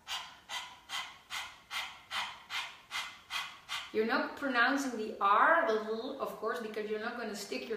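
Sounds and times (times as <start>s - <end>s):
quick rhythmic breathing like a whispered har: 0.0s - 4.0s
speech: 3.9s - 7.7s.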